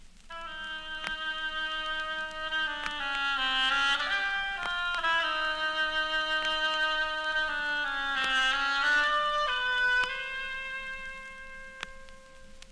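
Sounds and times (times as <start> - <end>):
reedy oboe playing a slow sustained melody portraying a duck: 0.3 - 12.6.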